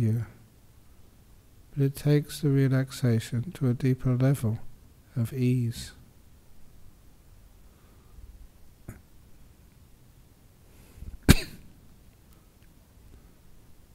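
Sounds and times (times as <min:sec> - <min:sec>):
low hiss: 0:00.0 - 0:13.9
speech: 0:01.8 - 0:06.0
small cough with breathy lead-in: 0:11.2 - 0:11.7.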